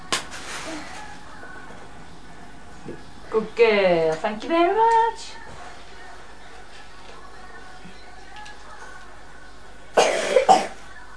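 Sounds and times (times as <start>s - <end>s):
speech: 2.9s - 5.4s
child coughing: 10.0s - 10.8s.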